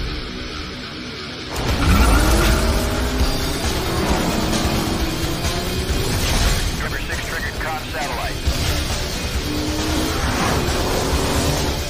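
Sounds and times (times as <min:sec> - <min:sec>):
race car engines revving at the start of a video game race: 0:01.5 - 0:11.8.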